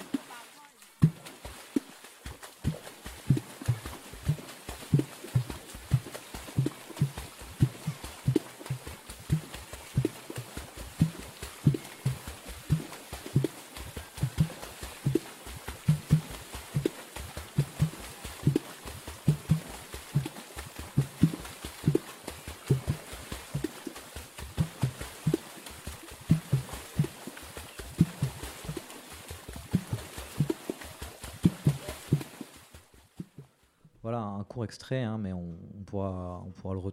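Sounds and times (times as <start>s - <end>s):
aquatic percussion music played by striking water: 0.0s - 33.6s
speech: 34.6s - 36.9s.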